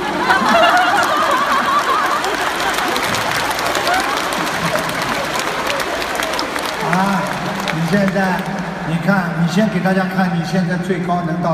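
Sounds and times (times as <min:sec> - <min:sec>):
audience laughing: 0:00.0 - 0:08.1
audience applause: 0:00.0 - 0:09.0
crowd murmur: 0:00.0 - 0:09.1
speech: 0:08.2 - 0:11.5.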